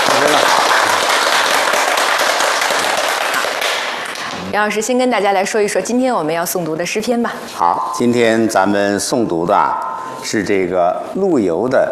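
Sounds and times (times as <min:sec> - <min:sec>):
audience applause welcoming a guest: 0:00.0 - 0:04.3
speech: 0:04.6 - 0:11.8.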